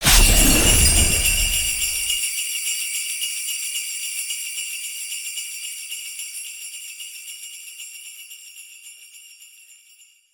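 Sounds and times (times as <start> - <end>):
vehicle boost: 0.0 - 2.2.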